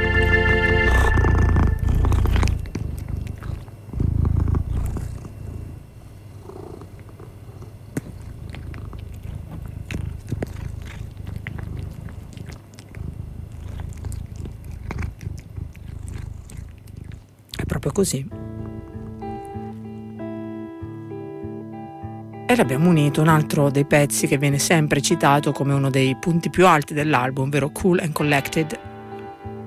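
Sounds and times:
cat purring: 0.0 - 29.6
chewing-like sounds: 0.9 - 5.8, 6.5 - 18.0
speech: 18.0 - 18.4, 22.5 - 28.9.

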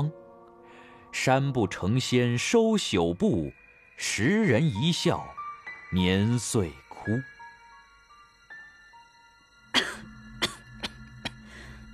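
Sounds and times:
speech: 1.2 - 7.3
sick woman coughing in a fit: 9.7 - 11.4.

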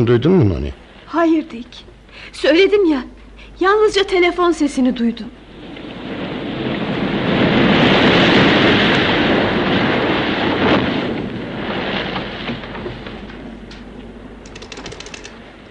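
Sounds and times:
speech: 0.0 - 5.4
storm wind roaring on a stormy night: 5.4 - 15.6.

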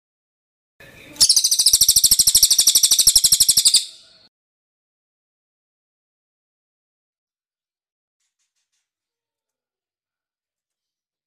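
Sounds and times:
bird trilling high chirps: 1.2 - 4.2.

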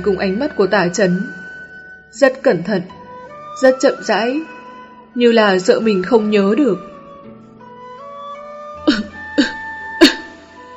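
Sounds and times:
speech: 0.0 - 1.4, 2.1 - 3.0, 3.6 - 4.6, 5.2 - 6.9
tonal music: 0.0 - 10.7
man dry coughing after choking on cigarette smoke: 8.9 - 10.3.

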